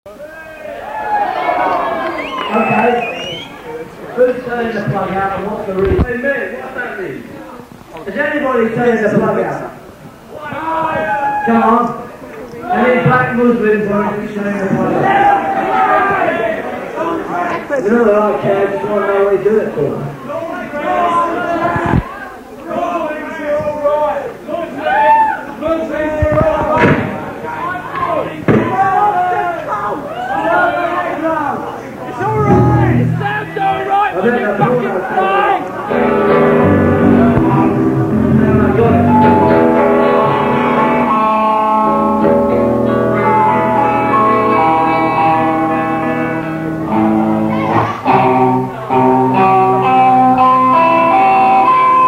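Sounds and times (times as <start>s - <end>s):
crowd banter: 0.1s - 52.0s
instruments tuning: 32.1s - 34.1s, 35.2s - 52.0s.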